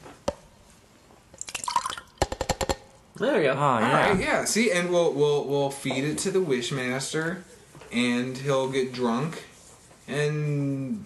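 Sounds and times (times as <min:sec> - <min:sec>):
gin poured from a head and dripping: 0:01.4 - 0:02.4
speech: 0:03.2 - 0:09.5, 0:10.1 - 0:11.0.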